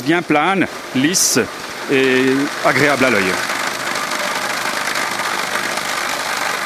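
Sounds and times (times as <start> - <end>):
speech: 0.0 - 3.6
vibrating machine shaking filled chocolate moulds to remove air bubbles: 1.5 - 6.6.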